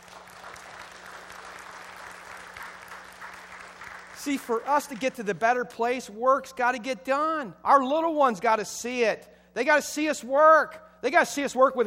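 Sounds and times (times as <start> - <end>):
audience applauding: 0.0 - 5.1
speech: 4.2 - 11.8.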